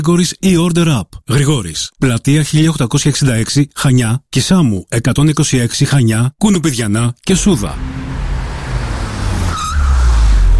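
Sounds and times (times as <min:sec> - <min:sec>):
speech: 0:00.0 - 0:08.2
used car engine revving: 0:07.4 - 0:10.5
tire squeal: 0:07.8 - 0:10.5.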